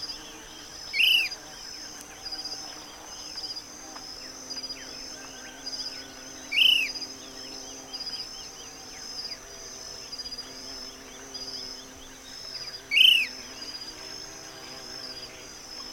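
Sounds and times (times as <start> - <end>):
faint pulsing buzzes: 0.0 - 15.9
steady high-pitched insect drone: 0.0 - 15.9
Short-crested flycatcher giving arched call notes: 6.5 - 7.0.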